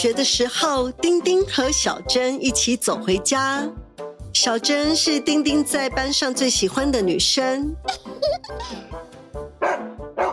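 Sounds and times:
speech: 0.0 - 9.0
big dog barking loudly behind a fence: 9.6 - 10.3.

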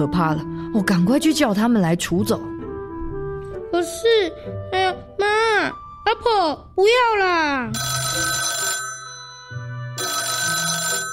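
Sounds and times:
speech: 0.0 - 2.5, 3.7 - 4.9, 5.6 - 8.4
telephone ringing: 7.8 - 11.1.

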